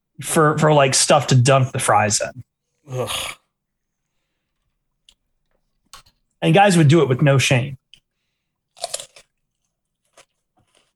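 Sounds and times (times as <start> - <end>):
speech: 0.2 - 3.4, 6.4 - 7.8
soft chewing crunches of pickle: 7.9 - 10.9
crunchy bite into a wet firm pickle: 8.7 - 10.9.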